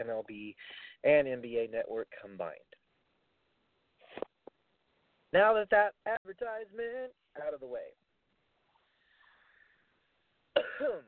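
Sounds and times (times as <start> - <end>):
speech: 0.0 - 2.8, 5.3 - 8.0, 10.6 - 11.0
person coughing: 10.6 - 11.0.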